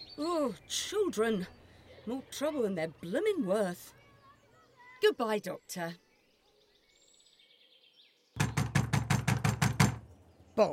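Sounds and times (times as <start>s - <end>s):
faint bird chirp: 0.0s - 10.7s
speech: 0.2s - 4.0s, 5.0s - 6.0s
loud heavy knocking on a door: 8.4s - 10.1s.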